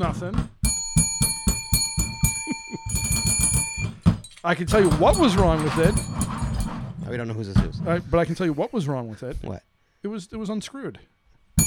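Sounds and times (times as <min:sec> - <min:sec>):
speech: 0:00.0 - 0:00.6, 0:04.4 - 0:06.2, 0:07.1 - 0:11.1
small bell ringing: 0:00.6 - 0:06.8.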